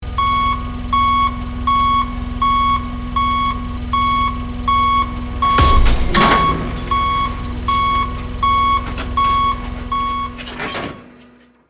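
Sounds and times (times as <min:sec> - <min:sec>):
forklift reversing: 0:00.1 - 0:11.4
cargo dropping: 0:05.4 - 0:11.3.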